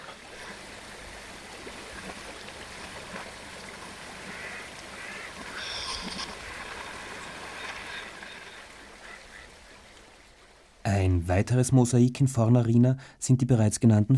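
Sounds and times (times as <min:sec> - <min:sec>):
flowing river water: 0:00.0 - 0:10.9
speech: 0:10.9 - 0:14.1.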